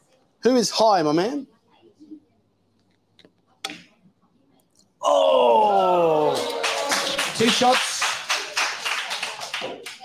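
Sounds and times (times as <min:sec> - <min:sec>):
speech: 0:00.4 - 0:01.5, 0:07.4 - 0:07.9
crowd of people applauding: 0:06.0 - 0:10.0.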